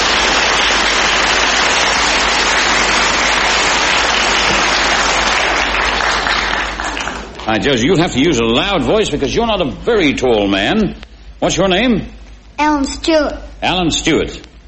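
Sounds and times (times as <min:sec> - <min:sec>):
studio audience applause for a quiz contestant: 0:00.0 - 0:07.9
speech: 0:07.5 - 0:14.6.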